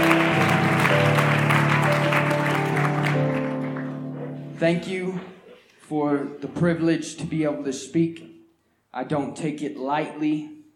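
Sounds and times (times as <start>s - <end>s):
audience applauding: 0.0s - 4.6s
sustained keyboard chords: 0.0s - 5.4s
speech: 4.6s - 5.3s, 5.9s - 8.3s, 8.9s - 10.6s.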